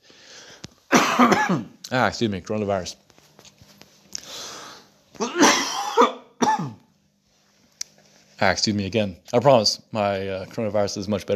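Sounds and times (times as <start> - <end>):
raspy intake of breath: 0.0 - 0.8, 4.2 - 5.0
person coughing: 0.9 - 1.8, 5.2 - 6.9
speech: 1.2 - 3.0, 8.4 - 11.3.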